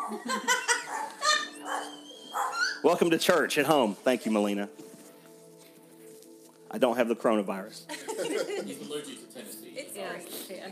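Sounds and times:
laughter: 0.0 - 1.8, 7.9 - 9.3
speech: 0.1 - 0.7, 2.8 - 4.8, 6.7 - 8.0
dog barking: 0.7 - 2.8.

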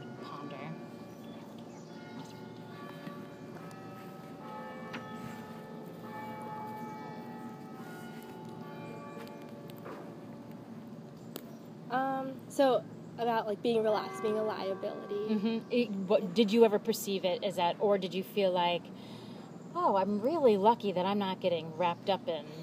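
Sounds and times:
bells ringing in overlapping tones: 0.0 - 10.8, 13.8 - 15.4
faint hum: 0.0 - 22.6
speech: 11.9 - 19.1, 19.8 - 22.6.

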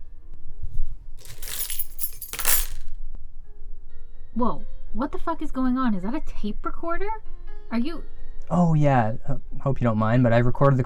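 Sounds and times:
bunch of keys jingling and clinking: 1.2 - 2.8
speech: 4.4 - 10.8.

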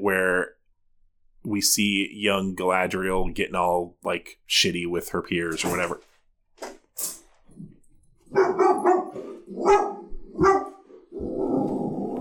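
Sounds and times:
speech: 0.0 - 0.3, 1.6 - 6.1
dog barking: 8.3 - 11.5
dog lower rumbling growl-like bark: 8.3 - 12.1.

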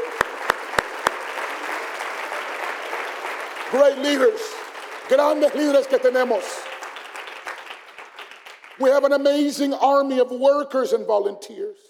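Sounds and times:
crowd applauding: 0.0 - 9.4
speech: 3.7 - 6.5, 8.8 - 11.8.

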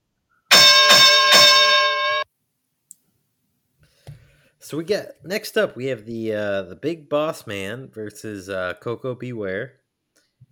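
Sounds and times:
loud ringing bell: 0.5 - 2.3
speech: 4.6 - 9.8.

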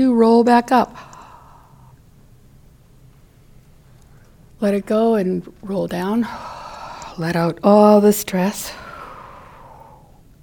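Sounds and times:
speech: 0.0 - 1.1, 4.6 - 6.6, 7.2 - 8.8
slow deep breath in and out: 1.0 - 2.1, 6.2 - 7.2, 8.7 - 10.4.

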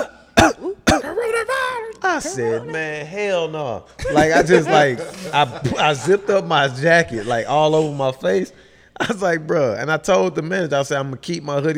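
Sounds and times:
man imitating a cough: 0.0 - 1.4
speech: 2.2 - 11.7
laughter: 4.0 - 7.9.

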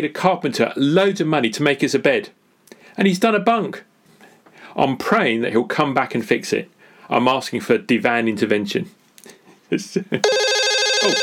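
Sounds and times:
speech: 0.0 - 2.4, 3.0 - 3.9, 4.7 - 10.4, 11.0 - 11.2
telephone ringing with a warbling electronic tone: 10.2 - 11.2.

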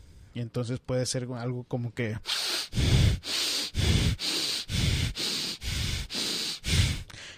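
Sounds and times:
speech: 0.4 - 3.4
rapid deep breathing as a breathing exercise: 2.2 - 7.3.

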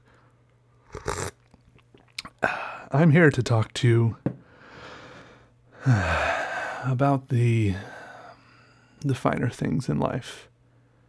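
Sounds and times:
slurping sip of coffee from a cup held in the hand: 0.9 - 2.2
soft swallow-like sound: 0.9 - 2.5
speech: 2.4 - 4.2, 5.8 - 6.2, 6.8 - 8.0, 9.0 - 10.5.

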